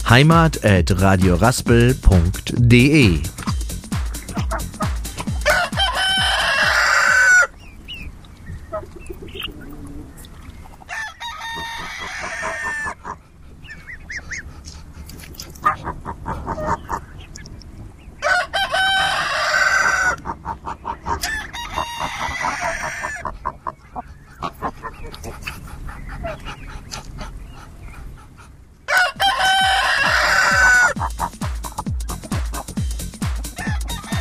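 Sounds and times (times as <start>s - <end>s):
hens clucking on a farm: 0.0s - 34.1s
speech: 0.1s - 3.4s
roosters crowing on a farm: 3.6s - 8.0s, 10.8s - 13.2s, 18.2s - 23.4s, 28.9s - 34.1s.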